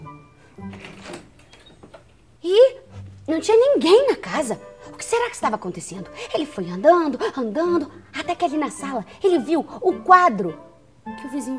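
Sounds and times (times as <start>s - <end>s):
door swinging open slowly with drawn-out creak: 0.6s - 2.2s
speech: 3.4s - 11.5s.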